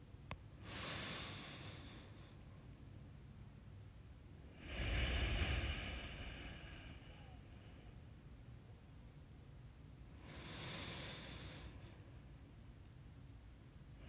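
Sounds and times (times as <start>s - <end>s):
slow deep human breathing in and out: 0.6s - 2.6s, 4.5s - 8.2s, 10.2s - 12.3s.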